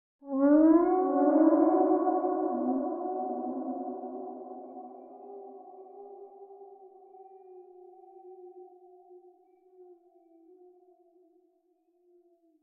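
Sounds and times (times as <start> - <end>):
eerie wolf howl with delay effect: 0.3 - 7.7.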